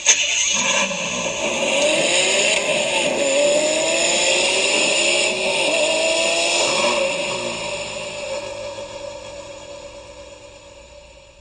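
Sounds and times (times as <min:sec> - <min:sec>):
Ferrari GTC4Lusso T car engine: 0:00.0 - 0:11.3.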